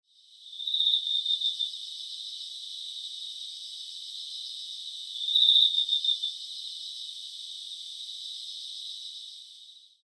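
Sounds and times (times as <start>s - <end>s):
autumn insects chirping in the middle of the night in October: 0.1s - 10.0s.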